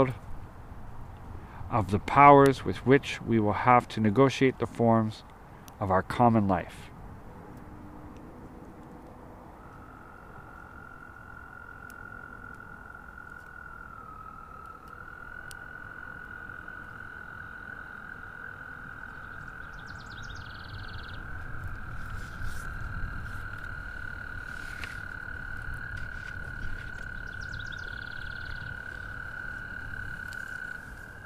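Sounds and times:
speech: 0.0 - 0.2, 1.7 - 6.9
chorus of American toads calling for mates in spring: 9.6 - 31.2
faint bird chirps: 19.1 - 21.3, 27.0 - 28.7.

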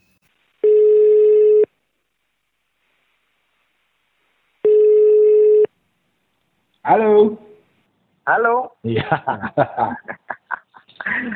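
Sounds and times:
telephone ringback tone of an outgoing call: 0.6 - 1.7, 4.6 - 5.7
speech: 6.9 - 7.4, 8.3 - 10.3
laughter: 8.9 - 11.3.

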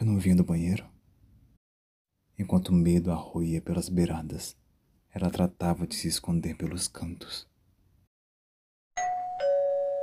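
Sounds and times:
speech: 0.2 - 1.0, 2.4 - 4.6, 5.2 - 7.5
two-tone doorbell chime: 9.0 - 10.0.

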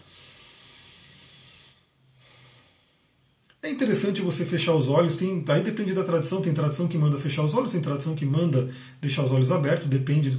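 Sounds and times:
breathing in and out through the nose: 0.0 - 3.3, 8.7 - 9.0
speech: 3.6 - 10.3.

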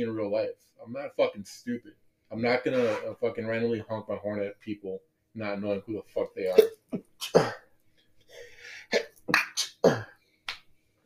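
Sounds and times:
speech: 0.0 - 7.6, 8.4 - 10.0
stifled sneeze: 2.7 - 3.1, 8.9 - 10.1.

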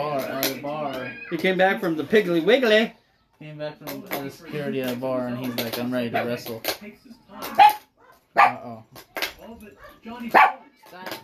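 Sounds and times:
speech: 1.3 - 7.8, 8.4 - 11.2
small dog barking: 7.6 - 8.6, 9.8 - 10.6.

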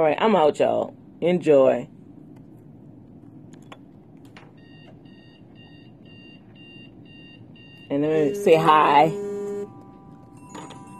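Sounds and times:
speech: 0.0 - 2.0, 7.9 - 9.3
phone ringtone of electronic beeps: 4.6 - 10.9.

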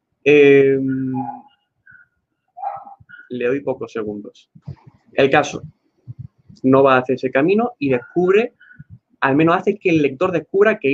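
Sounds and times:
speech: 0.2 - 1.4, 3.3 - 5.8, 6.6 - 8.6, 9.2 - 10.9
dog barking outside the window: 0.8 - 1.6, 2.6 - 3.4.

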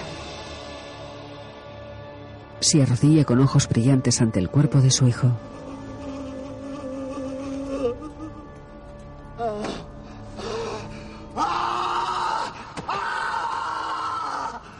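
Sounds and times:
speech: 2.7 - 5.5
man crying out in anguished grief: 11.4 - 14.6.

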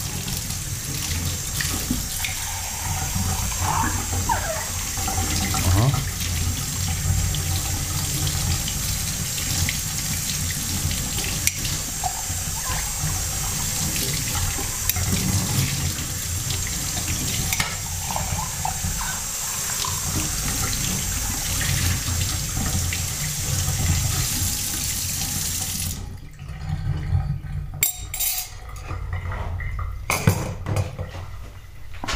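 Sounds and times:
water running from a tap while a cup and spoon are rinsed: 0.0 - 32.0.

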